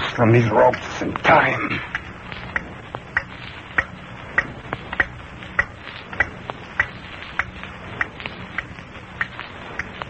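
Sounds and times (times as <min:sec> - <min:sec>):
faint low hum: 0:00.0 - 0:10.0
speech: 0:00.2 - 0:02.0
clock ticking in tick-tock rhythm: 0:01.9 - 0:10.0.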